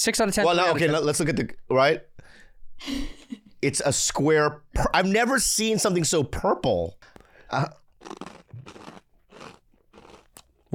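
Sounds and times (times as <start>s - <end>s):
speech: 0.0s - 9.6s
crunchy snack being bitten and chewed: 7.1s - 10.7s.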